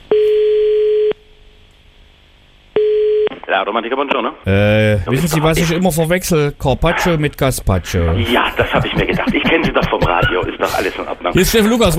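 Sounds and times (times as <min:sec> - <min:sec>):
telephone tone while calling: 0:00.1 - 0:01.2, 0:02.8 - 0:03.3
speech: 0:03.6 - 0:11.9
laughter: 0:07.9 - 0:11.9.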